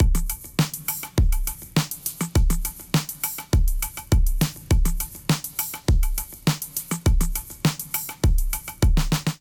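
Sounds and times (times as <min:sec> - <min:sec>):
drum kit beat at 102 bpm: 0:00.0 - 0:09.3.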